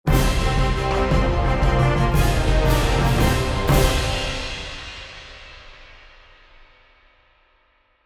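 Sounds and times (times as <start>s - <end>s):
pirate-style eyecatch jingle: 0.1s - 5.0s.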